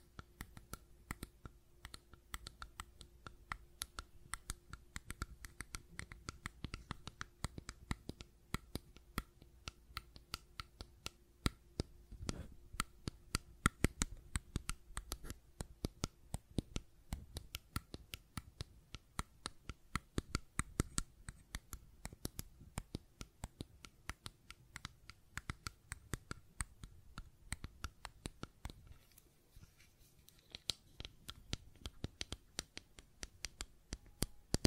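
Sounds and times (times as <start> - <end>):
fidget cube tapping and clicking: 0.0 - 29.0, 30.2 - 34.6
faint steady hum: 0.0 - 34.6.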